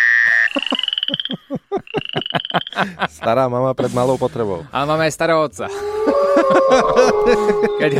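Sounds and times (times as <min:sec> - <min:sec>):
frogs croaking: 0:00.0 - 0:02.9
laughter: 0:00.3 - 0:03.4, 0:05.7 - 0:07.9
speech: 0:02.8 - 0:07.9.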